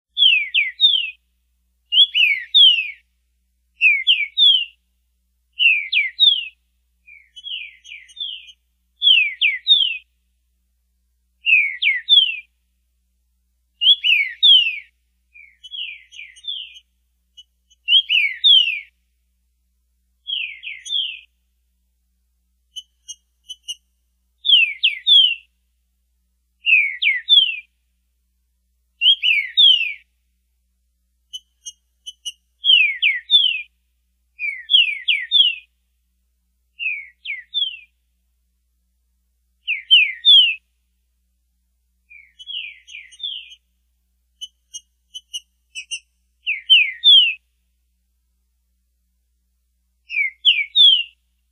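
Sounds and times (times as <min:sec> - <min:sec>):
trinca-ferro bird repeating song: 0:00.1 - 0:04.9, 0:05.5 - 0:10.3, 0:11.4 - 0:12.7, 0:13.7 - 0:19.2, 0:20.2 - 0:21.4, 0:22.6 - 0:25.6, 0:26.6 - 0:27.8, 0:29.0 - 0:30.2, 0:31.2 - 0:35.8, 0:36.7 - 0:38.1, 0:39.6 - 0:40.8, 0:42.0 - 0:43.7, 0:44.3 - 0:47.6, 0:50.0 - 0:51.5.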